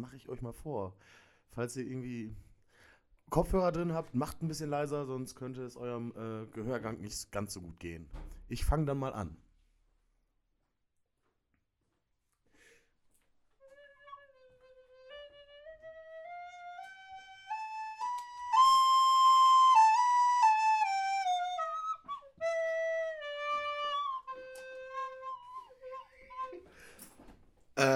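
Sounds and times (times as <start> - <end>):
speech: 0.0 - 2.5, 3.3 - 9.4
recorder playing a scale: 13.6 - 26.8.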